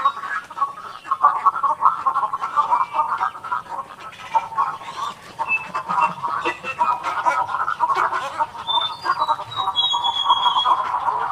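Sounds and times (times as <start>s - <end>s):
many cattle egrets croaking: 0.0s - 11.3s
high whistles: 5.4s - 6.8s, 8.6s - 11.0s.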